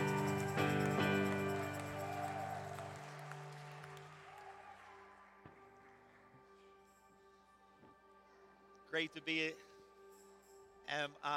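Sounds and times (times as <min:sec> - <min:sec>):
sustained organ-like keyboard chords: 0:00.0 - 0:04.2
church audience clapping: 0:00.0 - 0:06.3
speech: 0:09.0 - 0:09.7, 0:10.9 - 0:11.3.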